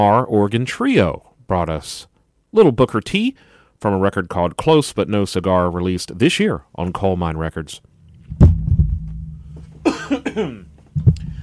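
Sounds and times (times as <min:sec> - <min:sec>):
speech: 0:00.0 - 0:08.5, 0:09.8 - 0:11.2
low steady hum: 0:07.4 - 0:11.4
coughs: 0:09.8 - 0:10.8.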